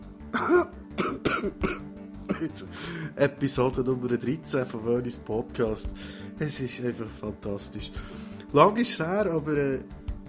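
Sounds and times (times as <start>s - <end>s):
speech: 0.3s - 0.8s, 1.4s - 1.8s, 2.4s - 10.0s
throat clearing: 0.4s - 2.7s
person coughing: 0.4s - 3.1s.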